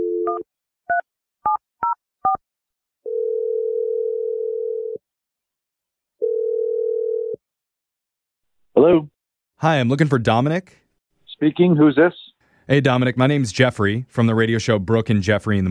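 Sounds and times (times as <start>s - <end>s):
telephone dial tone: 0.0s - 0.4s, 3.0s - 5.0s, 6.2s - 7.4s
speech: 8.8s - 10.8s, 11.4s - 15.6s.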